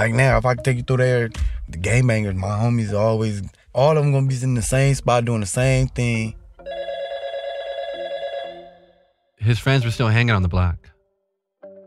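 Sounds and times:
speech: 0.0s - 6.4s, 9.4s - 10.9s
telephone ringing with warbling electronic tone: 6.6s - 9.0s.

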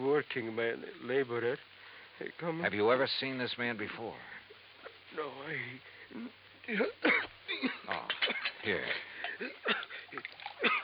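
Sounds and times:
speech: 0.0s - 4.4s, 5.1s - 10.8s
water pouring into a glass for a drink: 9.8s - 10.8s.

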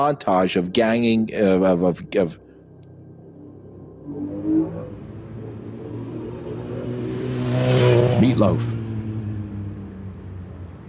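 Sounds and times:
speech: 0.0s - 2.4s, 7.6s - 8.8s
dirt bike engine revving: 4.0s - 10.0s.

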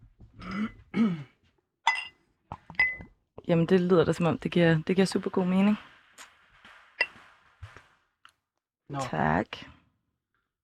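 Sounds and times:
glass clinking as a drink is poured: 1.9s - 3.1s
speech: 3.5s - 6.3s, 9.0s - 9.8s.

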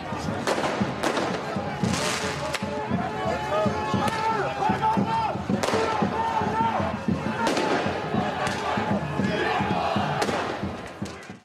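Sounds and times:
crowd singing and chanting slogans at a demonstration: 0.0s - 11.4s
fireworks exploding during a demonstration: 0.4s - 2.7s, 7.4s - 8.6s
people shouting at a demonstration: 1.1s - 11.4s.

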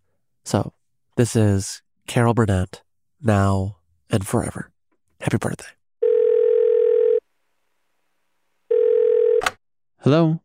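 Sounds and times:
speech: 0.5s - 5.8s, 10.0s - 10.4s
telephone dial tone before call connects: 6.0s - 7.2s, 8.7s - 9.6s.

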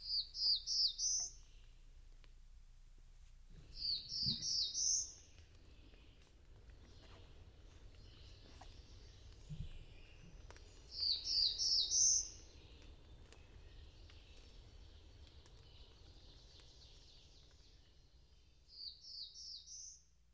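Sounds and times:
dark blue warbler singing among low branches: 0.0s - 1.7s, 3.7s - 6.2s, 8.0s - 18.0s
faint low outdoor rumble: 0.0s - 20.3s.

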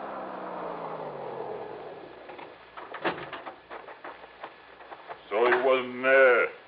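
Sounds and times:
hot rod car engine rumbling past on a muddy road: 0.0s - 2.8s
sharp knocks and clatters: 2.2s - 5.8s
man speaking: 5.2s - 6.6s.

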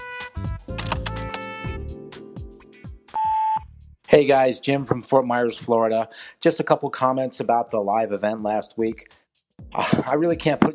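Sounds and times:
mixed tonal clicks and hums: 0.8s - 1.4s
voicemail playback beep: 3.1s - 3.7s
speech: 4.1s - 10.7s.

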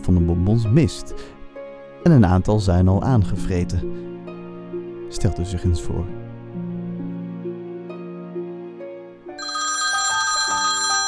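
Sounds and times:
speech: 0.1s - 1.4s, 2.0s - 4.2s, 5.1s - 6.3s
melodic telephone ringtone for an incoming call: 9.4s - 11.0s.

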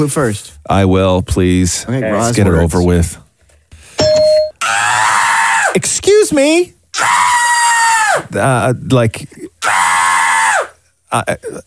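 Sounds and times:
speech: 0.0s - 3.2s, 5.8s - 7.2s, 8.2s - 9.8s, 11.1s - 11.6s
bright bell-like electronic timer ding: 4.0s - 4.6s
person screaming high-pitched: 4.6s - 5.8s, 7.0s - 8.3s, 9.6s - 10.8s.

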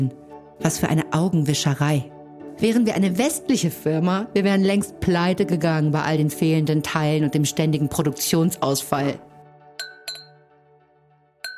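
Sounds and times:
speech: 0.0s - 9.3s
two wine glasses clinking: 9.8s - 10.4s.

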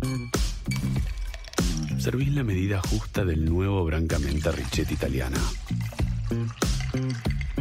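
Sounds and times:
ice cubes dropped into a glass for a Brancamenta and tonic drink: 0.7s - 2.1s, 4.2s - 7.6s
tonic water poured into a glass: 0.7s - 2.6s, 4.0s - 7.6s
speech: 2.0s - 7.2s.

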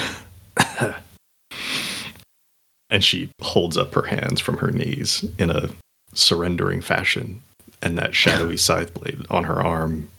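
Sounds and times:
voice acting out a rough hacking cough: 0.0s - 1.1s, 8.2s - 8.6s
speech: 0.8s - 1.0s, 2.9s - 10.1s.

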